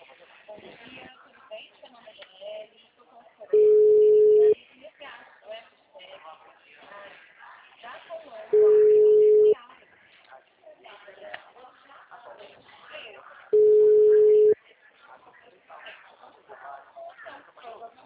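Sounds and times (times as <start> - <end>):
people talking: 0.0 - 18.0
phone call tones as a call goes to voicemail: 3.6 - 4.6, 8.6 - 9.6, 13.6 - 14.6.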